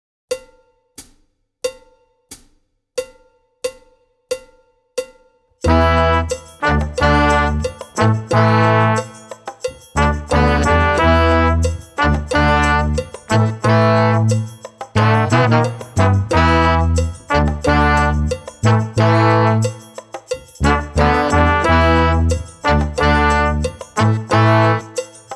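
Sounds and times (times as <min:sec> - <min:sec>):
brass music without drums: 0:05.6 - 0:25.3.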